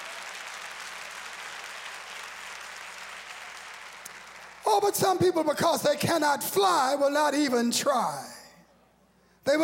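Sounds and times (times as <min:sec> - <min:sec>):
large gathering of people applauding: 0:00.0 - 0:04.9
speech: 0:04.7 - 0:08.4, 0:09.5 - 0:09.6.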